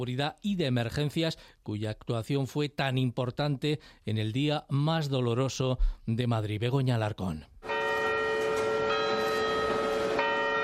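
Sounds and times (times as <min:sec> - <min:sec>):
speech: 0:00.0 - 0:07.5
church bells ringing: 0:07.6 - 0:10.6.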